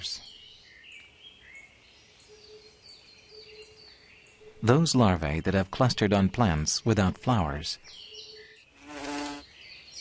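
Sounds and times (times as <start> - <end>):
speech: 4.6 - 8.0
hoverfly buzzing: 8.8 - 9.4.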